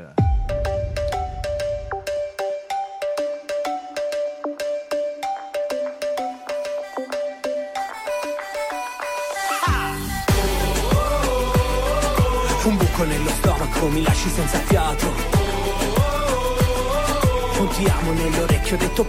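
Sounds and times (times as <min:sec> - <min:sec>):
bright plucky synth riff over light bass: 0:00.0 - 0:07.8, 0:09.4 - 0:19.0
speech: 0:13.0 - 0:15.3, 0:17.6 - 0:19.0.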